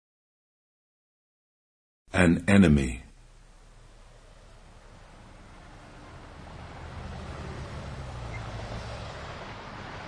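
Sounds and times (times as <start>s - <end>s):
speech: 2.2s - 3.0s
downtown rush hour street traffic: 3.5s - 10.0s.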